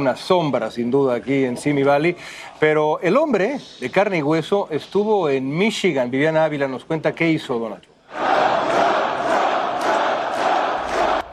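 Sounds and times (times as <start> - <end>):
speech: 0.0 - 8.2
large crowd of workers cheering and applauding: 8.2 - 11.3.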